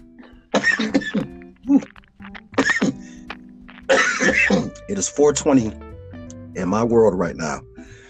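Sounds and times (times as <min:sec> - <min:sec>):
harsh raspy coughing: 0:00.6 - 0:01.3, 0:02.6 - 0:03.1, 0:03.9 - 0:04.8
throat clearing: 0:00.6 - 0:01.4, 0:02.6 - 0:03.2, 0:03.9 - 0:04.8
speech: 0:05.0 - 0:05.9, 0:06.6 - 0:07.7.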